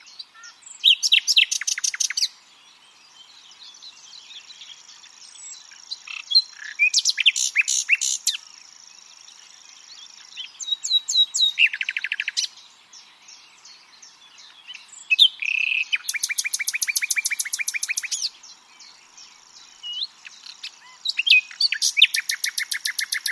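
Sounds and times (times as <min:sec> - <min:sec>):
common nightingale Luscinia megarhynchos singing: 0:00.0 - 0:23.2.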